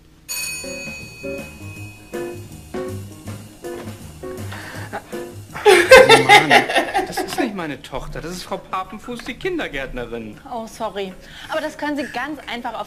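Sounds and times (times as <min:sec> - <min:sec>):
doorbell ringing with a repeating melodic chime: 0:00.3 - 0:02.7
laughter: 0:04.6 - 0:07.6, 0:11.8 - 0:12.4
speech: 0:05.1 - 0:06.8, 0:07.6 - 0:12.8.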